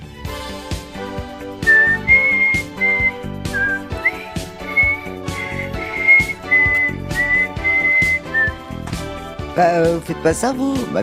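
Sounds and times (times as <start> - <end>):
instrumental music with regular percussive beats: 0.0 - 11.0
person whistling a tune off-key: 1.6 - 8.6
speech: 9.6 - 11.0.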